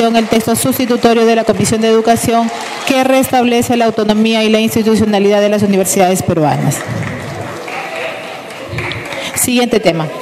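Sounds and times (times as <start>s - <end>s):
speech: 0.0s - 7.2s, 9.5s - 10.2s
room full of legislators applauding after a vote: 0.0s - 10.2s
crowd murmur: 6.8s - 10.2s.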